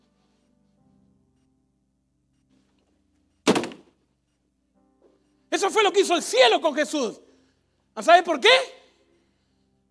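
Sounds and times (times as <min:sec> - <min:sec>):
heavy door slamming shut: 0:03.5 - 0:03.9
speech: 0:05.5 - 0:07.3, 0:08.0 - 0:08.8.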